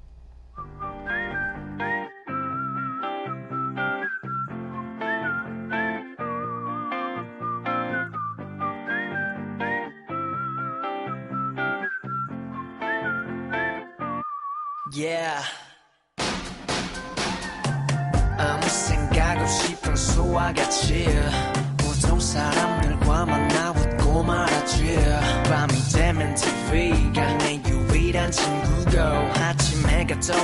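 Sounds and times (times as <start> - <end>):
whistled melody: 0.6 - 15.0, 17.3 - 30.4
speech: 15.0 - 15.6, 18.7 - 21.6, 22.2 - 30.4
pop song with full band: 16.7 - 30.4.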